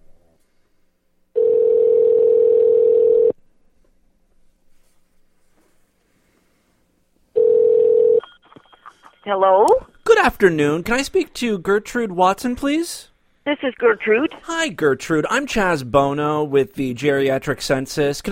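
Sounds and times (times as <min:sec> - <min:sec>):
loud steady telephone tone as a phone call is placed: 0:01.4 - 0:03.4, 0:07.4 - 0:09.4
speech: 0:09.3 - 0:18.2.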